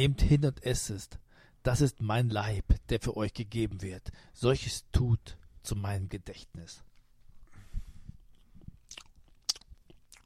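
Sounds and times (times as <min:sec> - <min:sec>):
speech: 0:00.0 - 0:06.9
wet chewing of bread with loud lip smacking: 0:08.2 - 0:10.2
soft crunching bites of bread: 0:08.8 - 0:10.2.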